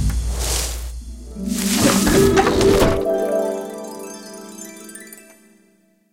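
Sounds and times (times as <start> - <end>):
wheel appearing effect: 0.0 - 3.1.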